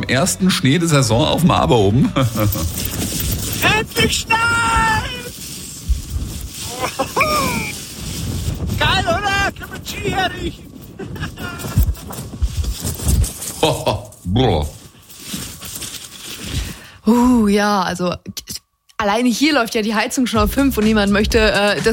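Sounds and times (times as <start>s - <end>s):
speech: 0.1s - 3.2s, 3.8s - 4.9s, 10.1s - 10.7s, 13.6s - 14.8s, 17.1s - 18.4s, 19.0s - 21.9s
gusty wind buffeting an outdoor microphone in snowy weather: 1.2s - 13.8s.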